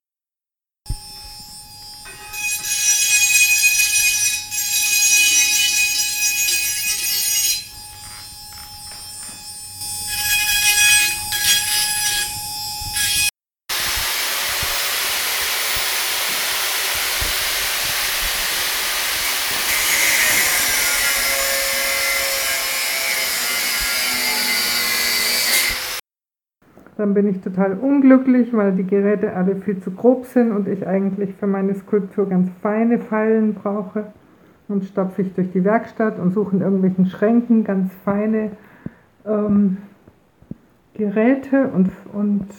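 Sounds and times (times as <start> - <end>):
angle grinder cutting metal struts: 0.9 - 26.0
speech: 27.0 - 39.9, 41.0 - 42.5.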